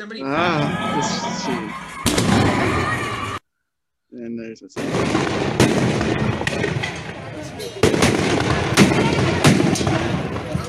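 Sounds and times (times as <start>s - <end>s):
speech: 0.0s - 3.1s, 4.2s - 9.0s, 9.8s - 10.5s
crowd noise and voices at a Cinco de Mayo gathering: 0.0s - 3.4s, 4.8s - 10.6s
laughter: 0.0s - 3.4s
percussion grenades exploding: 2.0s - 3.4s, 4.8s - 10.6s.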